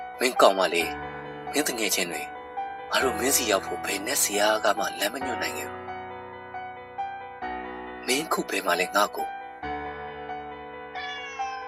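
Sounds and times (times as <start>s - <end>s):
speech: 0.2s - 2.3s, 2.9s - 5.8s, 8.1s - 9.4s
house cat meowing: 10.9s - 11.6s.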